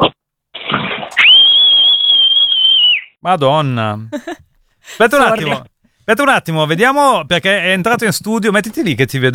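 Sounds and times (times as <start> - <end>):
loud human whistle: 1.2 - 3.2
speech: 3.2 - 4.4, 5.0 - 9.3.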